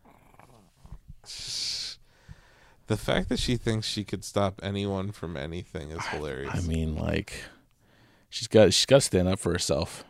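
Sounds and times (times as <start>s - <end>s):
speech: 2.9s - 7.6s, 8.3s - 10.0s
dog huffing through its nose: 6.0s - 6.6s
dog growling: 6.0s - 6.8s.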